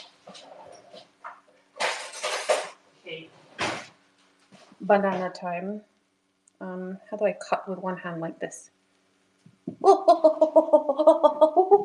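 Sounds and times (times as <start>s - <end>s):
cutlery clinking and rattling as a knife is grabbed: 1.8s - 2.8s
speech: 4.8s - 5.9s, 6.6s - 8.8s, 9.6s - 11.8s.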